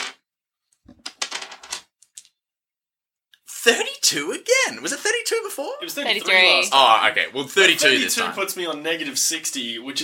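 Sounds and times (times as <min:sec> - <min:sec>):
handful of dice clattering across a tabletop: 0:00.9 - 0:02.3
speech: 0:03.6 - 0:10.0.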